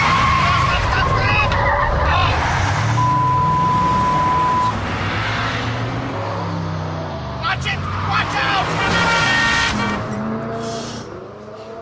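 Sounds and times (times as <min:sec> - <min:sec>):
steady tire squeal: 0:00.0 - 0:05.6, 0:07.6 - 0:11.1
car engine roaring at speed: 0:00.0 - 0:11.8
people talking: 0:00.4 - 0:02.4, 0:07.4 - 0:09.4.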